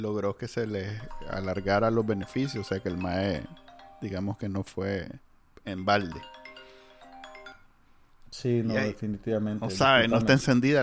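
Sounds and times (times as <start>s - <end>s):
speech: 0.0s - 6.4s, 8.3s - 10.8s
phone ringtone melodic chime despite silent mode: 0.6s - 4.6s, 6.0s - 7.8s.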